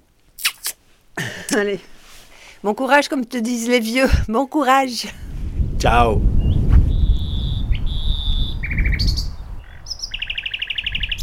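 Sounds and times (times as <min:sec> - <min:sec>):
speech: 0:01.5 - 0:02.0, 0:02.6 - 0:05.2, 0:05.8 - 0:06.3
nightingale singing on a windy day: 0:06.3 - 0:11.2.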